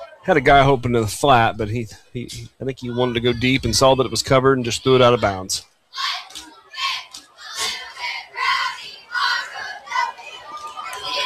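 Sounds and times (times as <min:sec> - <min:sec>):
crowd chatter at a football game: 0:00.0 - 0:11.2
speech: 0:00.2 - 0:06.2
cheerleaders chanting a classic cheer at a football game: 0:02.6 - 0:11.2
people clapping: 0:06.0 - 0:11.2.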